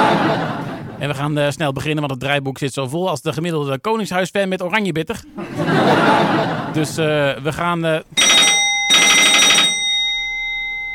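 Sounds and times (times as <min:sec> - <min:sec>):
laughter: 0:00.0 - 0:01.2, 0:05.2 - 0:07.4
speech: 0:01.0 - 0:08.4
telephone bell ringing with rapid metallic trilling: 0:08.2 - 0:10.9.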